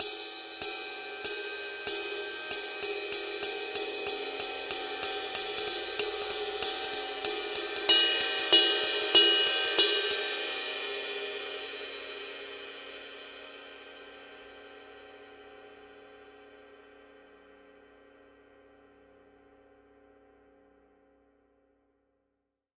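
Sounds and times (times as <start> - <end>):
ride cymbal pattern: 0.0 - 11.6.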